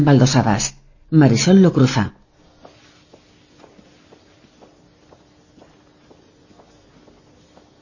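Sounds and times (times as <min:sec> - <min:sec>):
speech: 0:00.0 - 0:02.2
low hiss: 0:00.0 - 0:07.8
footsteps going down a flight of stairs inside a building: 0:02.3 - 0:07.8.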